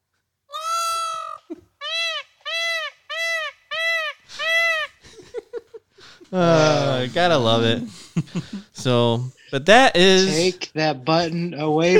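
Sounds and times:
peacock giving loud nasal wailing calls: 0.5 - 5.0
laughter: 4.3 - 8.7, 11.8 - 11.9
speech: 6.3 - 11.9.

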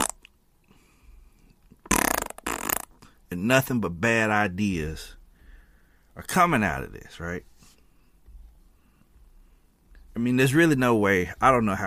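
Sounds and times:
loud sputtering fart sound effect: 0.0 - 0.2, 1.8 - 2.9
speech: 3.3 - 5.2, 6.2 - 7.5, 10.2 - 11.8.

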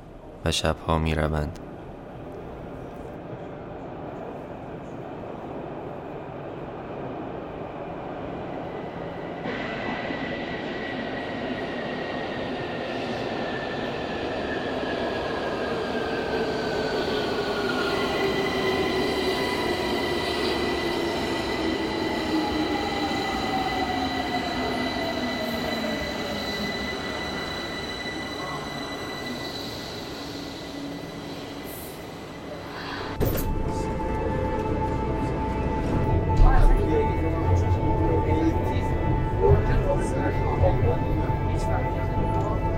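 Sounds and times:
subway train rumbling: 0.0 - 42.7
speech: 0.4 - 1.6
subway train wheels squealing: 16.8 - 33.2.

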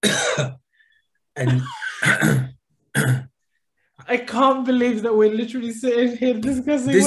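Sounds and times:
person demonstrating harsh hacking coughs: 0.0 - 0.6, 1.4 - 3.3
speech: 0.0 - 0.6, 1.4 - 2.4, 4.1 - 7.0.

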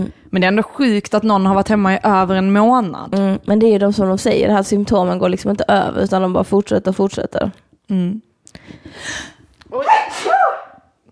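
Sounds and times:
speech: 0.0 - 10.6
person performing an exaggerated sneeze: 9.8 - 10.8.

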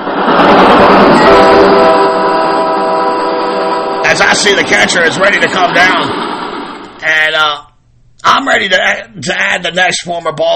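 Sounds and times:
train horn blaring a chord-like blast: 0.1 - 7.0
speech: 4.2 - 6.2, 8.2 - 10.5.

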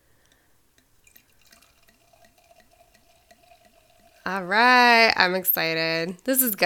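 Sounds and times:
champagne pouring into a glass: 0.3 - 4.3
speech: 4.3 - 6.6.

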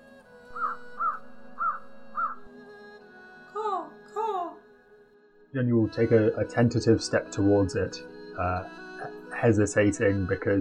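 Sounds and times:
crow cawing: 0.5 - 2.6
speech: 5.5 - 10.6.

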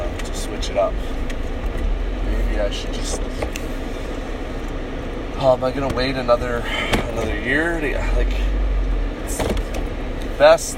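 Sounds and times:
road-and-engine rumble inside a moving car in traffic: 0.0 - 10.7
speech: 0.7 - 1.4, 2.6 - 4.0, 5.4 - 8.6, 10.4 - 10.7.

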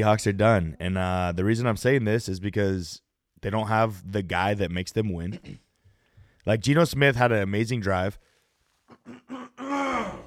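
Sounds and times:
speech: 0.0 - 5.6, 6.4 - 8.3, 8.9 - 9.4
man clearing throat: 5.3 - 5.7, 8.9 - 10.2.

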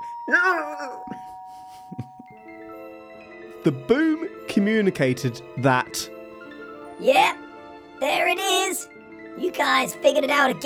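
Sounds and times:
doorbell chiming: 0.0 - 3.0
speech: 0.3 - 1.2, 3.6 - 6.1, 7.0 - 7.4, 8.0 - 10.6.

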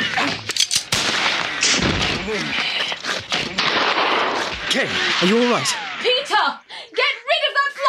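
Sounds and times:
rifle fired from a church tower over a village square: 0.9 - 2.4, 3.3 - 6.0
voices and commotion: 2.0 - 7.8
speech: 4.7 - 7.8.

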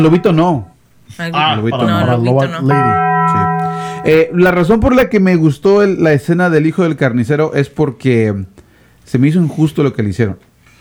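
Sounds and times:
speech: 0.0 - 3.4, 4.0 - 10.5
bell chime sound effect: 2.7 - 4.4.

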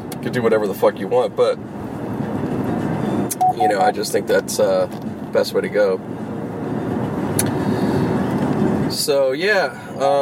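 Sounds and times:
car engine and road noise driving through hills: 0.0 - 10.2
speech: 0.2 - 1.8, 3.6 - 6.2, 9.0 - 10.2.

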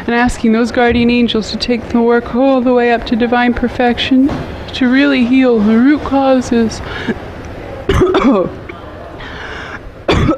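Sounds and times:
speech: 0.1 - 7.2, 8.2 - 8.6
person coughing harshly: 7.9 - 8.5, 10.1 - 10.3.

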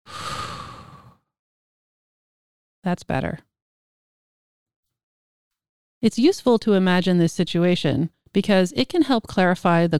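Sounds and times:
deep breathy sigh: 0.0 - 1.2
speech: 2.8 - 3.5, 6.0 - 9.9.

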